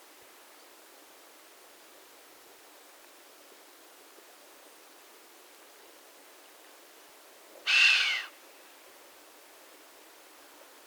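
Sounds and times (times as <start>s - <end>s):
chamois breathy hissing whistle: 7.7s - 8.3s.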